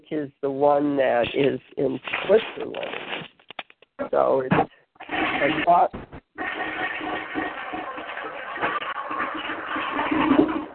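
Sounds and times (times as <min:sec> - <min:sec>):
speech: 0:00.1 - 0:03.1, 0:04.1 - 0:04.8, 0:05.4 - 0:06.1
toilet flushing: 0:05.0 - 0:05.8, 0:06.4 - 0:10.7.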